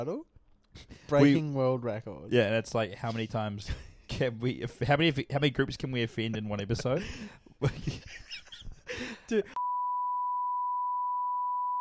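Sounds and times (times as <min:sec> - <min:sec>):
speech: 0:00.0 - 0:08.2, 0:08.9 - 0:09.6
loud steady high-pitched censor bleep: 0:09.6 - 0:11.7.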